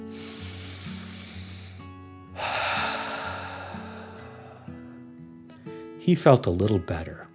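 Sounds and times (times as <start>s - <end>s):
deep breath in and out: 0.0s - 5.2s
soft music: 0.0s - 7.3s
speech: 6.1s - 7.3s.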